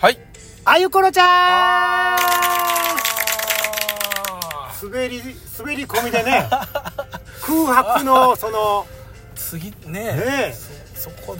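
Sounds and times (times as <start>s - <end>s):
speech: 0.0s - 3.1s, 4.8s - 11.3s
applause and cheering: 2.2s - 4.6s
laughter: 5.9s - 8.2s.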